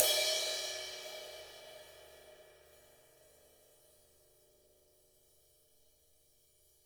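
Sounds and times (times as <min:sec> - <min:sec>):
acoustic drum ride cymbal: 0:00.0 - 0:02.4.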